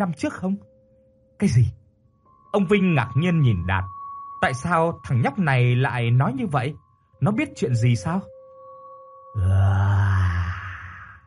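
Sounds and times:
speech: 0.0s - 0.7s, 1.4s - 1.8s, 2.5s - 8.3s, 9.4s - 9.7s
deep chorus of many voices groaning: 9.4s - 11.2s.

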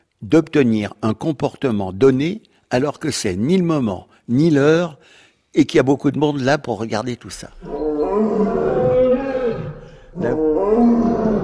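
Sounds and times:
speech: 0.2s - 8.6s
lion roaring: 7.6s - 11.4s.

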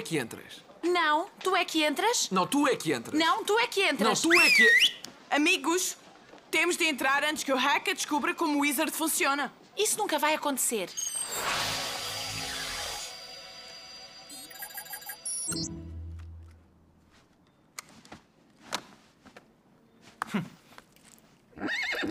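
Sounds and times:
speech: 0.0s - 11.6s
circus horse neighing: 21.6s - 22.0s.

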